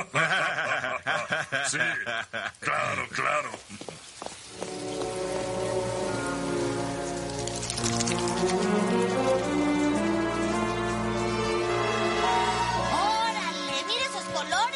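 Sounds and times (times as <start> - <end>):
laughter: 0.0 - 3.0
steady rain falling on a surface: 1.3 - 14.5
speech: 1.7 - 4.1
sustained humming musical tones: 4.6 - 14.6.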